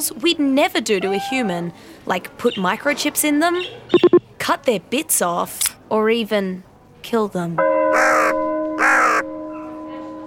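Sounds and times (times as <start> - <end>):
speech: 0.0 - 8.4
crows cawing harshly: 8.0 - 9.2.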